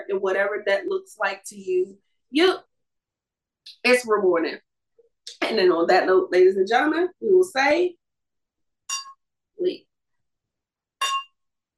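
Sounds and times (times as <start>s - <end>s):
speech: 0.1s - 2.7s, 3.7s - 4.7s, 5.3s - 8.0s, 9.6s - 9.9s
wine glasses clinking in a toast: 8.9s - 9.2s, 11.0s - 11.4s.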